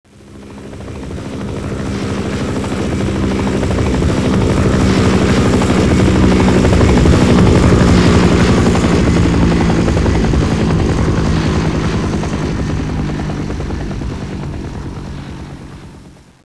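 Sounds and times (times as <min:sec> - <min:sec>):
osprey flying by: 0:00.1 - 0:16.3.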